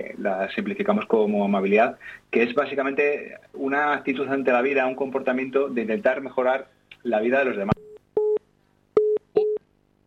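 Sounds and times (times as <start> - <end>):
speech: 0.0 - 7.9
busy tone after a dropped phone call: 9.0 - 9.6.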